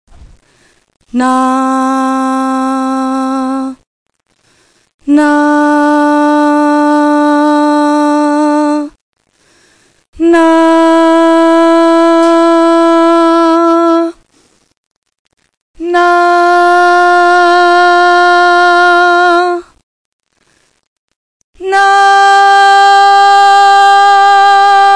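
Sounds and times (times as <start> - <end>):
human voice singing the tone A: 1.1 - 3.8, 5.1 - 9.0, 10.2 - 14.2, 15.8 - 19.8, 21.6 - 24.9.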